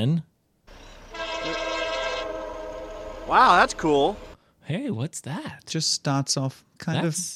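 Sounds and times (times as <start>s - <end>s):
speech: 0.0s - 0.3s, 3.3s - 7.3s
rumbling rail-yard background: 0.7s - 4.4s
loud train horn with stacked tones: 1.0s - 4.4s.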